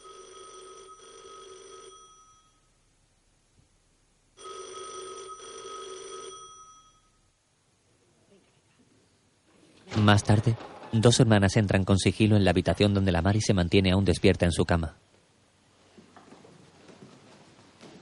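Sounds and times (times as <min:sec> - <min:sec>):
convent telephone bell ringing in an office: 0:00.0 - 0:02.7, 0:04.4 - 0:07.2
speech: 0:10.0 - 0:15.0.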